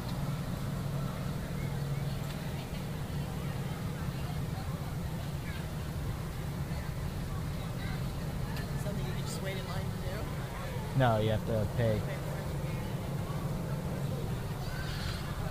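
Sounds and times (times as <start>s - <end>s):
indistinct crowd chatter: 0.0s - 15.4s
radio-controlled model boats motoring on water: 0.0s - 15.4s
speech: 11.0s - 12.2s.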